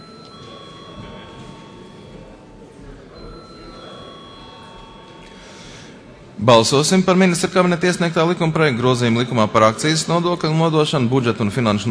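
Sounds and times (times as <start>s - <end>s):
parliament voting electric call bell ringing: 0.0s - 5.9s
low murmur of a large hall: 0.0s - 11.9s
speech: 6.4s - 11.9s.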